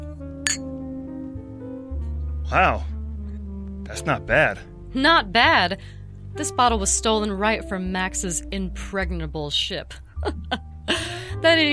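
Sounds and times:
steady low musical hum: 0:00.0 - 0:11.7
glasses clinking in a toast: 0:00.5 - 0:00.7
speech: 0:02.5 - 0:03.0, 0:03.9 - 0:10.6, 0:11.4 - 0:11.7.

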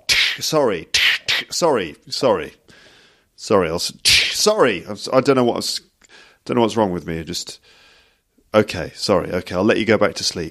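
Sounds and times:
voice imitating slaps to the face: 0:00.0 - 0:01.6, 0:04.0 - 0:04.5
speech: 0:00.4 - 0:07.8, 0:08.5 - 0:10.4.

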